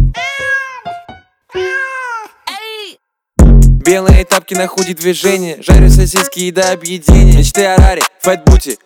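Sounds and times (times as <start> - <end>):
cat meowing loudly: 0.2 - 0.9, 1.5 - 2.4
cat chirping: 0.2 - 2.2
speech: 3.9 - 8.8.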